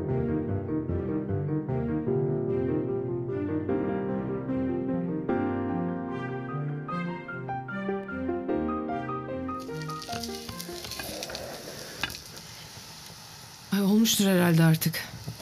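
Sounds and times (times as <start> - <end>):
soft music passage: 0.0 - 11.5
semolina and pistachios sizzling and scraping as stirred and toasted in a pot: 9.6 - 15.4
speech: 14.1 - 15.4.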